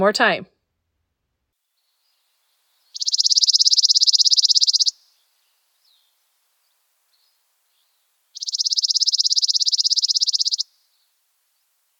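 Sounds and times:
speech: 0:00.0 - 0:00.5
chipping sparrow singing dry trills: 0:01.8 - 0:11.2.

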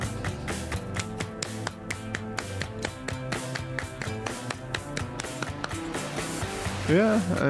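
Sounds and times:
loud full rock band track with guitars and bass: 0:00.0 - 0:07.4
steady handclaps on the beat in a rock song: 0:00.8 - 0:06.4
speech: 0:06.9 - 0:07.4.

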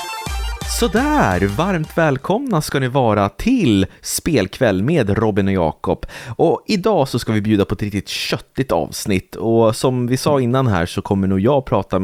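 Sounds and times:
upbeat podcast intro jingle with bright synth melody and punchy beat: 0:00.3 - 0:02.3
speech: 0:00.8 - 0:12.0.

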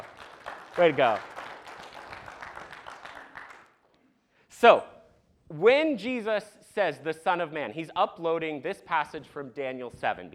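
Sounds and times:
crowd applauding: 0:00.0 - 0:03.8
speech: 0:00.8 - 0:01.3, 0:04.6 - 0:04.9, 0:05.5 - 0:10.3.

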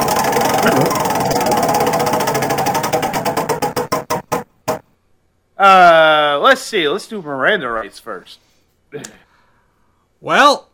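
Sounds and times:
prize wheel spinning with rapid ticking: 0:00.0 - 0:04.8
speech: 0:00.6 - 0:01.0, 0:05.6 - 0:09.2, 0:10.2 - 0:10.7.

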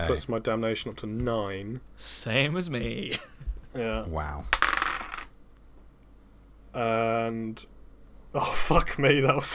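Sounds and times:
speech: 0:00.0 - 0:04.6, 0:06.8 - 0:07.7, 0:08.3 - 0:09.5
two dice rolling on a table: 0:04.4 - 0:05.4.

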